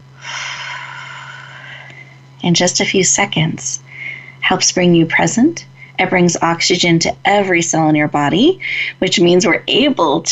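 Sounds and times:
faint low hum: 0.0 - 10.3
deep breath drawn close to the microphone: 0.2 - 2.2, 3.9 - 4.4
speech: 2.4 - 3.9, 4.5 - 10.3.

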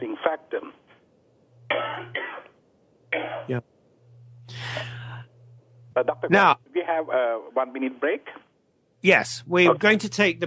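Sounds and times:
low steady hum: 0.0 - 10.4
speech: 0.2 - 0.8, 3.5 - 3.7, 6.0 - 8.4, 9.0 - 10.4
person coughing: 1.7 - 2.5, 3.2 - 3.6
throat clearing: 3.2 - 3.6.

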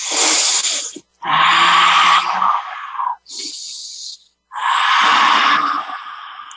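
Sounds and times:
deliberate loud yogic breathing: 0.0 - 6.5.

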